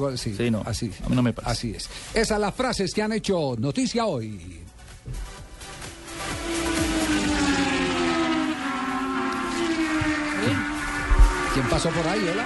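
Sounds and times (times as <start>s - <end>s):
speech: 0.0s - 5.2s, 11.6s - 12.4s
powerful engine roaring and revving: 4.9s - 12.4s.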